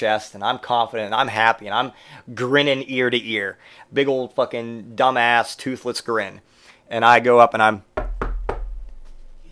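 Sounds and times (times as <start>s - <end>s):
speech: 0.0s - 7.9s
knocking on a door: 8.0s - 9.5s.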